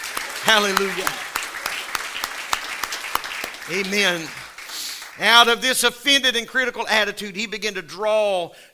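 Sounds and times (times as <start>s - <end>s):
audience clapping in rhythm: 0.0s - 6.4s
speech: 0.4s - 1.3s, 3.7s - 4.4s, 5.2s - 8.7s.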